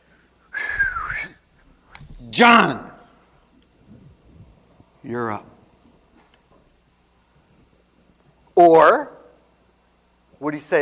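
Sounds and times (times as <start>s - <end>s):
person whistling one breathy note: 0.5s - 1.4s
speech: 2.3s - 2.9s, 5.1s - 5.5s, 8.6s - 9.1s, 10.4s - 10.7s.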